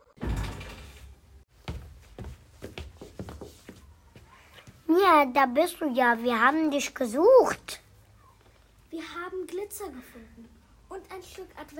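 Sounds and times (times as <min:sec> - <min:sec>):
door bursting open: 0:00.0 - 0:01.4
scuffling footsteps of several people hurrying in: 0:01.6 - 0:04.9
speech: 0:04.9 - 0:07.8, 0:09.5 - 0:11.7.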